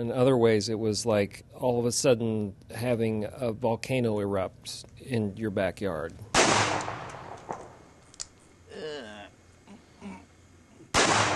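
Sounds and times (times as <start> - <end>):
speech: 0.0 - 6.7
gunshots fired at a painted portrait: 6.3 - 7.7, 10.9 - 11.3
loud blast: 6.4 - 7.4, 10.9 - 11.3.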